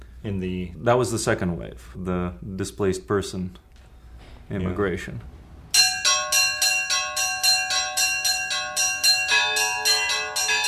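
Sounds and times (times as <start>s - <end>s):
speech: 0.2s - 3.7s, 4.5s - 5.4s
two small church bells ringing in a rhythmic pattern: 5.7s - 10.6s.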